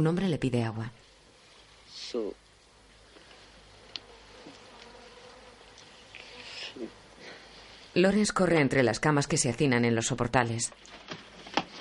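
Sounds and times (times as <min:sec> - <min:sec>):
speech: 0:00.0 - 0:01.0, 0:02.0 - 0:02.4, 0:06.8 - 0:07.0, 0:08.0 - 0:11.3
insects buzzing among sick people in a courtyard: 0:00.9 - 0:08.2.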